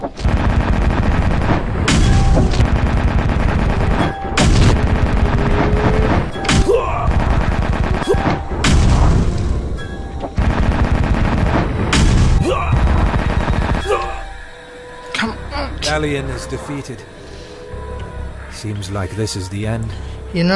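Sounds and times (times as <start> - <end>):
rapid bursts of video game gunfire: 0.0 - 9.2, 10.4 - 13.9
video game cannon fire from a ghost ship's main cannons: 0.0 - 9.4, 10.4 - 14.0
constant roar in a video game battle: 0.0 - 14.4
speech: 16.0 - 17.2, 18.6 - 20.5.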